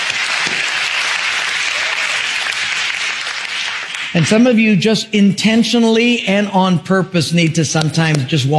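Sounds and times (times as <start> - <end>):
large group clapping in triumph: 0.0 - 4.5
speech: 4.2 - 8.5.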